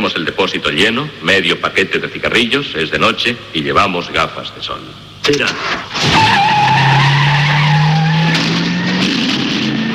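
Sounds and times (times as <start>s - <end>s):
speech: 0.0s - 6.3s
car tires screeching: 5.5s - 9.9s
car engine revving: 5.6s - 9.9s.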